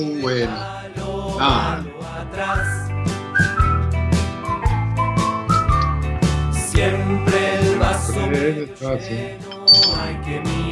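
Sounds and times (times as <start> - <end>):
speech: 0.0 - 2.8, 8.4 - 10.7
bouncy instrumental backing with a steady beat: 0.3 - 10.7
person whistling a tune: 2.6 - 6.2.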